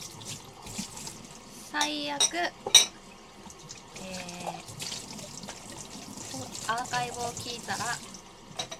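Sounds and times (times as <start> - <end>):
tap water running while washing dishes: 0.0 - 8.7
speech: 1.8 - 2.7, 6.7 - 8.1
dishes clattering: 1.8 - 3.0, 8.6 - 8.7.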